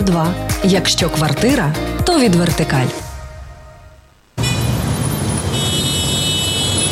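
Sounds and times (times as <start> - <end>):
speech: 0.0 - 3.0
dense city traffic roar of vehicles: 3.4 - 6.8
car horns: 4.4 - 6.8.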